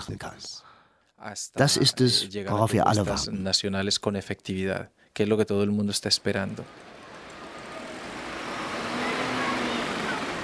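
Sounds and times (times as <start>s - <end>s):
speech: 0.0s - 7.0s
car engine and tire noise rumbling along a road: 6.6s - 10.4s.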